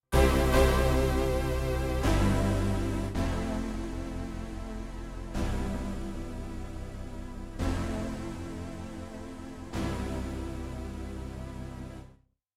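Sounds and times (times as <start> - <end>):
XV-88 synthesizer sounds: 0.0 - 12.0.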